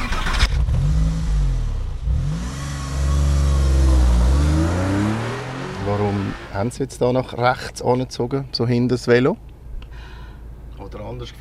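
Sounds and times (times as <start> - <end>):
old family estate car engine starting and accelerating through gear changes: 0.0 - 6.8
speech: 6.6 - 9.5, 10.9 - 11.4.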